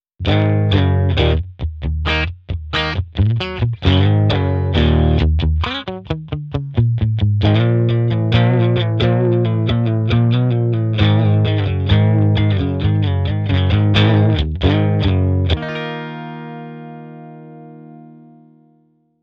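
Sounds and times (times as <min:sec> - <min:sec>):
overdriven blues rhythm guitar without effects: 0:00.2 - 0:18.8.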